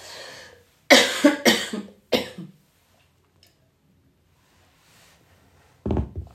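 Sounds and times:
person coughing harshly: 0.9 - 2.6.

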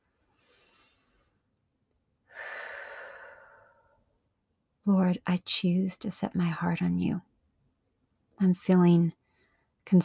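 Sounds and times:
slow deep breathing: 0.2 - 1.5, 2.3 - 4.1
speech: 4.8 - 7.3, 8.4 - 9.2, 9.8 - 10.0.

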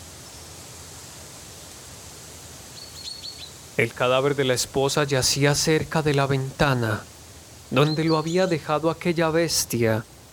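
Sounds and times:
steady hushed rush of broadband noise: 0.0 - 10.3
bird chirping: 2.8 - 6.8, 7.7 - 9.8
speech: 3.8 - 10.1.

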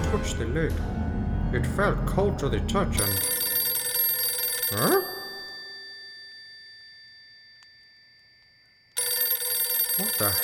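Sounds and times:
speech: 0.1 - 3.3, 4.7 - 5.1, 10.2 - 10.4
telephone bell ringing with a bright metallic tone: 3.0 - 10.4.

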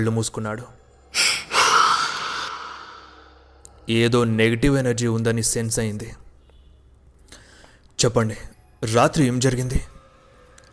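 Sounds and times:
speech: 0.0 - 1.2, 3.9 - 6.2, 8.0 - 9.9
detective taking a deep breath: 1.1 - 3.6.

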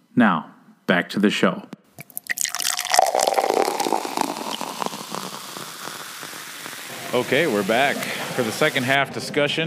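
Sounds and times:
speech: 0.2 - 1.8, 7.1 - 9.6
beer being poured into a glass: 2.0 - 8.8.

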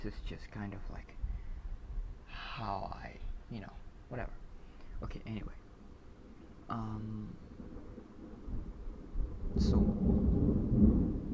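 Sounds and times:
speech: 0.0 - 1.2, 2.6 - 4.4, 5.0 - 5.6, 6.7 - 8.0, 9.5 - 10.2
low thunder rumbling during a storm: 5.7 - 11.3.

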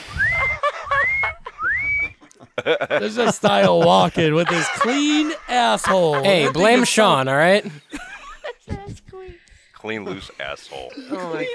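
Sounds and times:
person whistling short rising notes: 0.0 - 2.2
laughter: 0.0 - 11.5
speech: 2.6 - 7.8, 9.8 - 11.5.

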